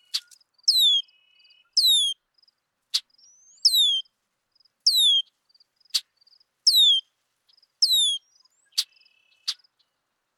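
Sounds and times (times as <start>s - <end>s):
red-winged blackbird giving clear descending slurred whistles: 0.7s - 1.0s, 1.8s - 2.2s, 3.6s - 4.0s, 6.7s - 7.0s, 7.8s - 8.2s.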